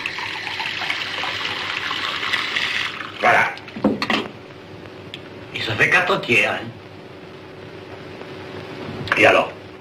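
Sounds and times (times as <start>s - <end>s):
water pouring into a drink mixed with lemon: 0.0s - 3.3s
speech: 5.7s - 6.8s, 9.2s - 9.5s.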